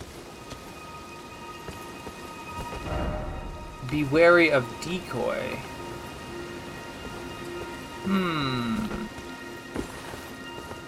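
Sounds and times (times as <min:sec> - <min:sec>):
steady rain pattering in a video game: 0:00.0 - 0:10.8
low thunder rumbling in a video game: 0:02.8 - 0:05.9
speech: 0:03.9 - 0:05.8, 0:08.1 - 0:09.0.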